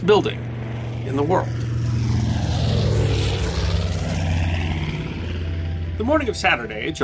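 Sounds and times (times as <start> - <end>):
speech: 0.0 - 1.7, 6.0 - 7.0
propeller bomber engines droning overhead: 0.0 - 7.0.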